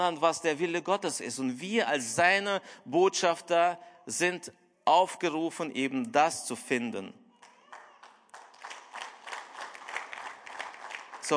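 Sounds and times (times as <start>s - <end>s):
speech: 0.0s - 7.2s
small group of people clapping: 7.4s - 11.3s.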